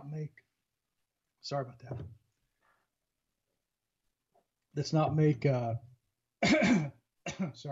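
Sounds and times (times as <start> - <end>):
man speaking: 1.4 - 2.1, 4.8 - 5.9, 7.4 - 7.7
man clearing his throat after swallowing something: 6.4 - 7.6
man coughing after swallowing something: 6.4 - 7.7.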